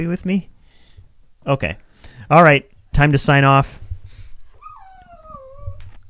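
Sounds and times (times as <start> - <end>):
speech: 0.0 - 0.6, 1.4 - 3.8
dog whimpering: 4.6 - 6.0.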